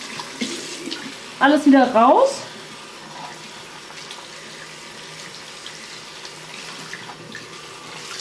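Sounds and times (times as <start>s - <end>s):
tap water running over hair: 0.0s - 8.1s
speech: 1.4s - 2.5s.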